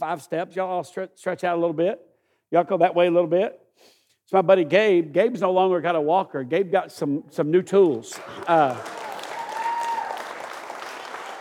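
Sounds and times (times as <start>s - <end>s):
speech: 0.0s - 9.0s
audience clapping: 8.0s - 11.4s
faint cheering or calling: 8.3s - 11.4s.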